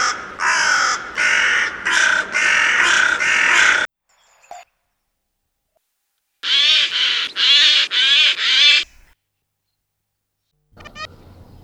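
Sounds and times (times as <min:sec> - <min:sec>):
bird harsh calls: 0:00.0 - 0:03.9, 0:06.4 - 0:09.2, 0:10.8 - 0:11.6.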